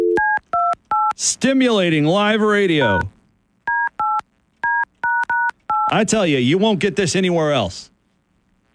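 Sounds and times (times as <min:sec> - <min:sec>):
telephone keypad dialing beeps: 0:00.2 - 0:01.2, 0:03.7 - 0:05.9
speech: 0:01.2 - 0:03.2, 0:05.9 - 0:07.9.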